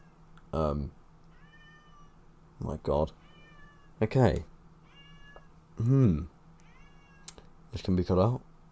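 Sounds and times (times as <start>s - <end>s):
speech: 0.5s - 1.0s, 2.6s - 3.2s, 4.0s - 4.5s, 5.8s - 6.3s, 7.7s - 8.5s
cat meowing: 1.3s - 2.2s, 3.2s - 4.0s, 4.8s - 5.5s, 6.6s - 7.4s.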